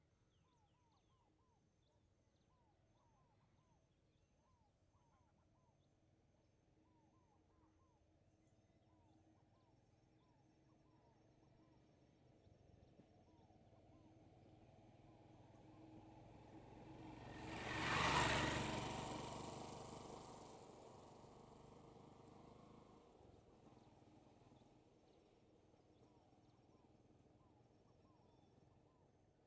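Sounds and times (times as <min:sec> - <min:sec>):
motorcycle passing from the right in a rural setting: 0:15.8 - 0:24.1.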